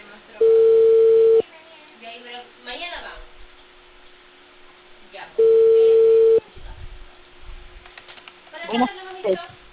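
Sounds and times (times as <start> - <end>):
telephone ringing tones of a call being placed: 0.4 - 1.4, 5.4 - 6.4.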